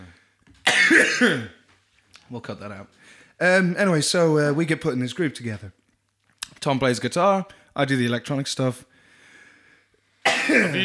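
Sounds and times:
harsh raspy cough: 0.6s - 1.6s, 10.2s - 10.8s
speech: 0.9s - 1.6s, 2.3s - 5.8s, 6.6s - 8.9s, 10.5s - 10.8s.

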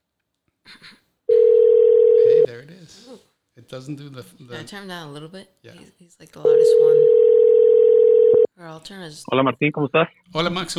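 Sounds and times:
telephone dialing tones on an outgoing call: 1.3s - 2.5s, 6.5s - 8.5s
speech: 2.6s - 7.8s, 8.6s - 10.7s.

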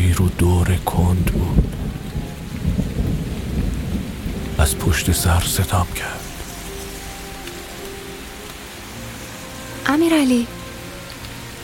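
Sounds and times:
deep thunder rumbling: 0.0s - 9.2s
steady rain pouring: 0.0s - 11.6s
speech: 0.2s - 1.4s, 4.6s - 6.3s, 9.9s - 10.6s.

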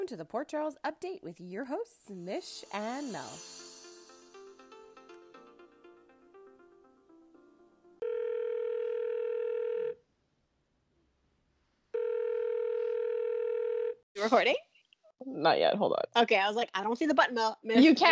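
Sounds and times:
speech: 0.1s - 3.6s, 14.2s - 18.1s
musical chime tones: 2.6s - 6.0s
telephone ringing with long steady electronic rings: 8.0s - 10.0s, 12.0s - 14.0s.

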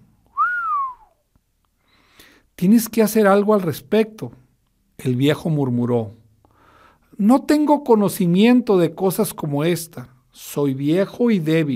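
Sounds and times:
boy whistling: 0.3s - 1.2s
speech: 2.6s - 4.4s, 5.0s - 6.2s, 7.2s - 11.7s.

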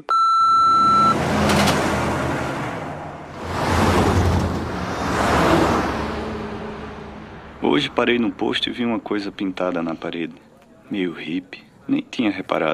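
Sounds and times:
large truck passing by: 0.6s - 9.6s
speech: 7.8s - 12.7s.

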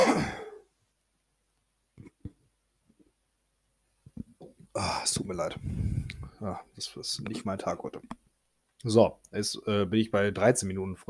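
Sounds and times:
person clearing throat with a rough gravelly burst: 0.0s - 0.6s
speech: 4.8s - 8.2s, 8.8s - 11.0s.

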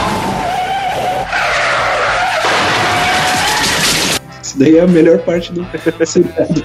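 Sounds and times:
car tires skidding across pavement: 0.0s - 4.2s
speech: 4.6s - 6.6s.

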